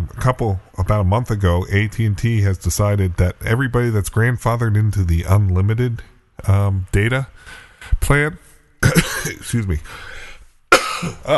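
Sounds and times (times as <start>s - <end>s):
speech: 0.2s - 10.1s, 11.0s - 11.3s
person coughing: 8.8s - 9.4s, 10.7s - 11.3s
throat clearing: 8.8s - 9.4s, 10.7s - 11.3s.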